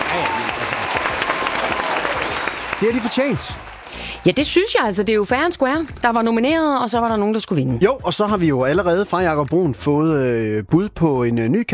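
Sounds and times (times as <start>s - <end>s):
crowd applause: 0.0s - 4.9s
speech: 2.8s - 11.7s.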